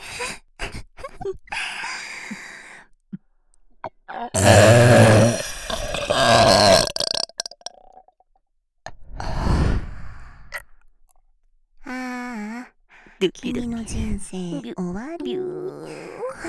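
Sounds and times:
faint mouth clicks: 4.4s - 8.1s
long loud burp: 4.4s - 8.1s
speech: 13.3s - 16.1s.

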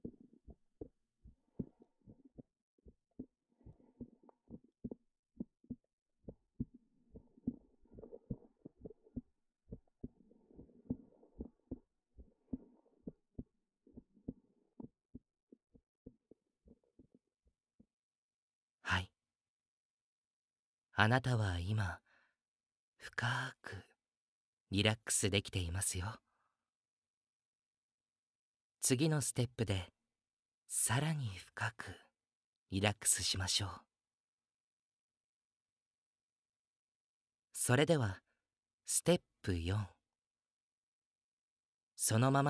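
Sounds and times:
steady heartbeat of soft low thumps: 0.0s - 15.2s
speech: 21.0s - 22.0s, 23.1s - 23.9s, 24.7s - 26.3s, 28.8s - 30.0s, 30.7s - 32.0s, 32.7s - 33.9s, 37.6s - 38.2s, 38.9s - 40.0s, 42.0s - 42.4s.

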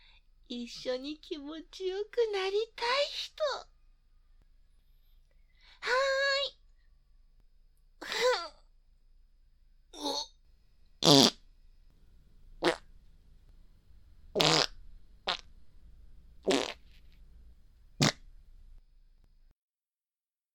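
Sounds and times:
speech: 0.5s - 3.7s, 5.8s - 6.6s
short buzzing and sputtering farts: 11.0s - 11.4s, 12.6s - 12.9s, 14.4s - 15.5s, 16.4s - 17.0s, 18.0s - 18.2s.

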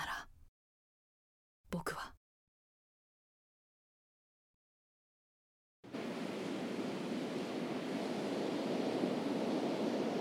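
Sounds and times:
ocean surf waves at the shore: 5.9s - 10.1s.

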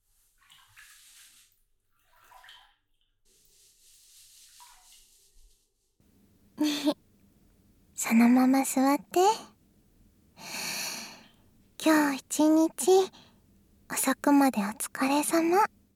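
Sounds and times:
water swishing and splashing while washing someone's back in a bath: 0.0s - 5.7s
loud splash of pouring water in a bath: 0.2s - 2.8s, 4.2s - 5.2s
speech: 8.1s - 9.5s, 11.8s - 13.2s, 13.9s - 15.7s.

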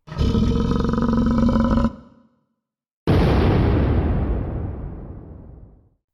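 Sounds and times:
monster roar: 0.0s - 2.3s
big explosion: 3.1s - 6.0s.

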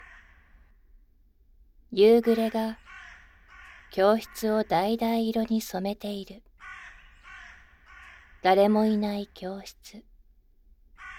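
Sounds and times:
crows cawing at dusk: 0.0s - 0.8s, 2.4s - 5.0s, 6.6s - 8.5s, 11.0s - 11.1s
speech: 1.9s - 2.8s, 3.9s - 6.5s, 8.4s - 10.1s.

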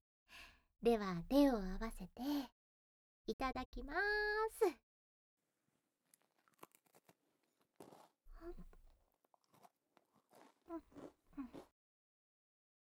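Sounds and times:
speech: 0.8s - 2.5s, 3.3s - 4.9s, 8.5s - 8.7s, 10.7s - 11.5s
crunchy butter cookie being bitten and chewed: 6.1s - 11.7s.

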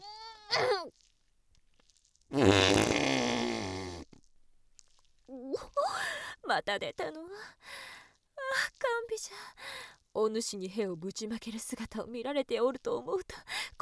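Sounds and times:
speech: 0.5s - 0.8s, 6.5s - 7.9s, 8.8s - 13.8s
long loud buzzing fart: 2.3s - 4.2s.

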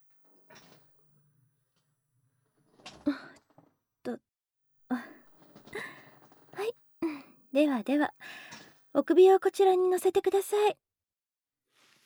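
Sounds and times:
hair salon shampoo chair backrest reclining with clunks and creaks: 2.6s - 3.7s
speech: 4.1s - 4.3s, 7.6s - 8.4s, 9.0s - 10.8s.

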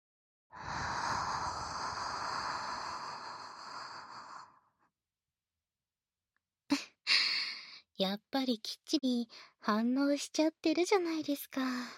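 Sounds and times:
soft breathy exhale blown into the ear: 0.6s - 4.6s
speech: 8.0s - 11.9s.

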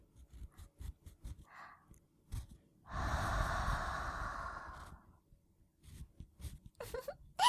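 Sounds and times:
soft breath blown into the ear before ear cleaning: 2.9s - 5.0s.

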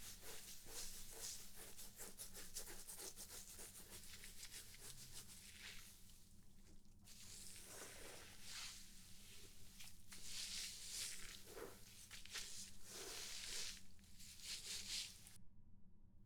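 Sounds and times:
rubbing lathered hair during a shampoo scalp massage: 0.0s - 6.1s, 7.1s - 15.4s.

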